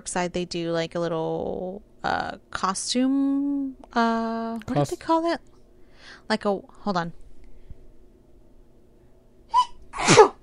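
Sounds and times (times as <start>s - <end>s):
speech: 0.0s - 5.5s, 6.1s - 7.2s
loud sneeze: 9.6s - 10.4s.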